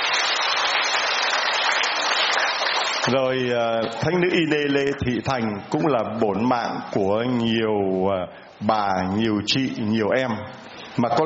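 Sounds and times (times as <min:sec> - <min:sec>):
large crowd applauding: 0:00.0 - 0:03.3
speech: 0:03.1 - 0:11.2.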